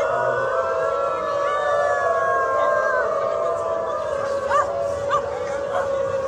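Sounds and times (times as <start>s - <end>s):
crowd din at a Berlin subway station exit: 0.0s - 6.2s
people protesting as transspecies howling like dogs at a Berlin subway station exit: 0.0s - 6.2s.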